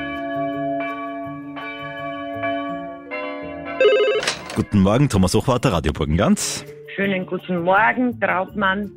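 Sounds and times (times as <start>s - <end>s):
church bell ringing: 0.0s - 4.8s
speech: 4.6s - 8.9s.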